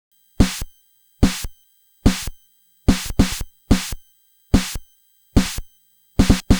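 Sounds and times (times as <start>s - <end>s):
Nintendo Entertainment System chiptune drum loop: 0.4s - 4.0s, 4.6s - 4.8s, 5.4s - 6.5s.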